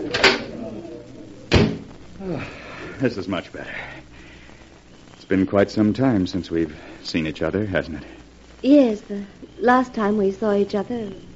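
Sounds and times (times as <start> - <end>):
door swinging open onto a terrace: 1.5 - 1.9
speech: 2.2 - 4.1, 5.3 - 11.3.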